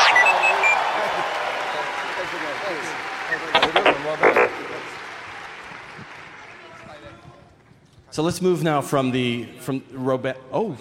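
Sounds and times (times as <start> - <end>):
short bright electronic chirps: 0.0 - 1.0, 3.3 - 5.0
audience applause for a droid robot on stage: 0.0 - 6.8
speech: 8.2 - 10.7.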